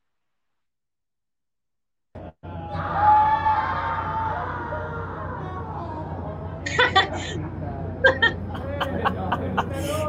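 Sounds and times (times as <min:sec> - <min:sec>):
man screaming in terror: 0:02.7 - 0:04.5
laughter: 0:06.7 - 0:10.0.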